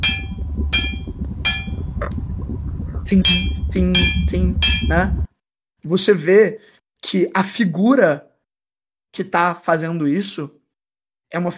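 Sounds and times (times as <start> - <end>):
hammer blows on metal ringing out: 0.0 - 1.8, 3.3 - 5.0
low steady rumble: 0.0 - 5.3
speech: 3.1 - 8.3, 9.1 - 10.6, 11.3 - 11.5.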